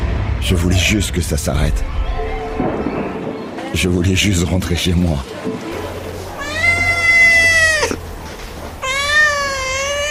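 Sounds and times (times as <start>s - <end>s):
speech: 0.4s - 3.1s, 3.7s - 5.9s
cats meowing in cages at an animal shelter: 6.4s - 8.0s, 8.8s - 10.0s.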